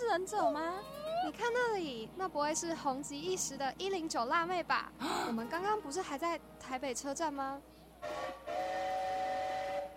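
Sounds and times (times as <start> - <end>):
speech: 0.2 - 8.4
train whistle as the train is about to depart: 8.0 - 9.9.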